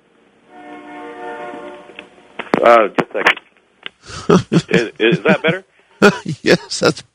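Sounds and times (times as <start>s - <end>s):
train horn blaring: 0.4s - 2.4s
speech: 2.6s - 3.4s, 4.0s - 7.1s
laughter: 4.1s - 7.1s.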